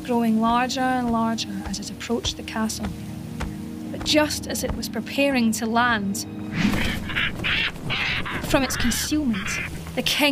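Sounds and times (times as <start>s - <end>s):
speech: 0.1s - 3.1s, 4.0s - 10.2s
stork caught in a net crying out in panic: 6.5s - 9.8s.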